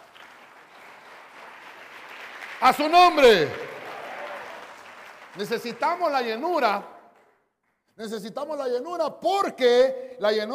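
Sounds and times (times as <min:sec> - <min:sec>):
congregation clapping in dense applause: 0:00.0 - 0:07.8
speech: 0:02.6 - 0:03.6, 0:05.4 - 0:06.9, 0:08.0 - 0:10.5.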